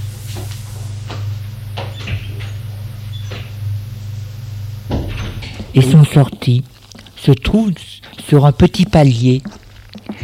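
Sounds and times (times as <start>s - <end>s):
door opening with clicks and creaks: 1.8s - 3.6s, 4.9s - 5.8s
speech: 5.8s - 9.6s.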